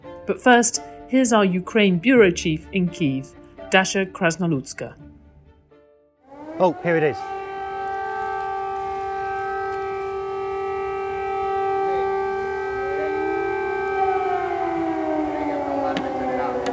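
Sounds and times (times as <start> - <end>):
speech: 0.3 - 5.0, 6.6 - 7.4
several air raid sirens wailing across a city: 6.2 - 16.7.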